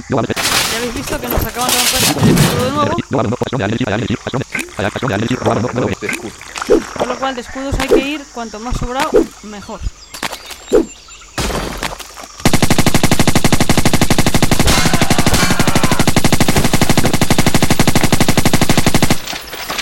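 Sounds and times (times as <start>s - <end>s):
speech: 0.0s - 10.0s
rapid automatic turret gunfire in a video game: 12.4s - 19.7s.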